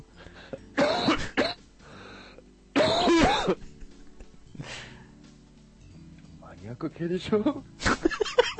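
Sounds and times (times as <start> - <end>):
person in a coughing fit: 0.8 - 1.6, 2.8 - 3.7
speech: 6.8 - 7.8.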